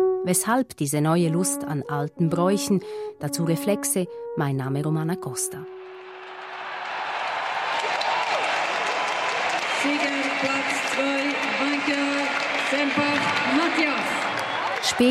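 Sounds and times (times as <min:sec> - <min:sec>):
speech: 0:00.2 - 0:06.0, 0:09.8 - 0:15.0
large crowd cheering and applauding at a Swiss wrestling festival: 0:05.7 - 0:15.0.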